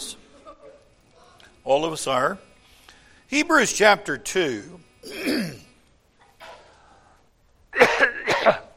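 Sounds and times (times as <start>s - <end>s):
speech: 1.7s - 2.5s, 3.3s - 5.6s
loud harsh coughs: 5.0s - 5.8s, 7.8s - 8.7s
person clearing throat: 5.0s - 5.8s, 7.8s - 8.7s.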